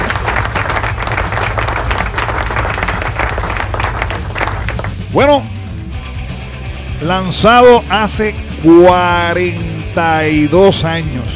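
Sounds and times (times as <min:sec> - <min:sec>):
crowd applause: 0:00.0 - 0:05.0
speech: 0:05.2 - 0:05.5, 0:07.0 - 0:11.3.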